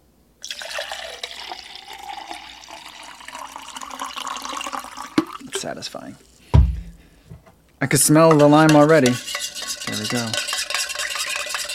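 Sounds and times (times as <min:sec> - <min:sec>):
water pouring into a drink container: 0:00.4 - 0:05.6
speech: 0:05.6 - 0:06.4, 0:07.8 - 0:09.3, 0:09.9 - 0:10.5.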